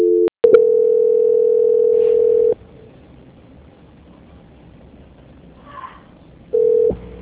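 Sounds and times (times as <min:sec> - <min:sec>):
steady single-pitch telephone tone during call transfer: 0:00.0 - 0:02.6, 0:06.5 - 0:07.1.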